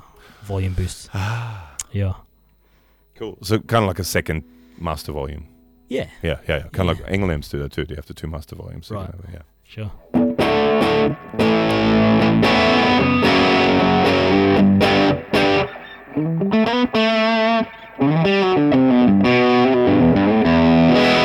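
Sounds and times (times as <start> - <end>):
speech: 0.4 - 2.3, 3.2 - 12.6
distorted electric guitar through amp dirty channel with reverb: 10.0 - 21.2.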